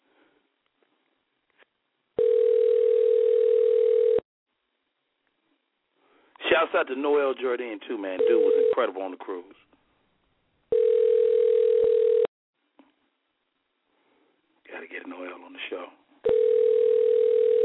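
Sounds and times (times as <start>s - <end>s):
phone ringback tone from an outgoing call: 2.2s - 4.2s, 8.2s - 8.8s, 10.7s - 12.3s, 16.3s - 17.6s
speech: 6.6s - 9.7s.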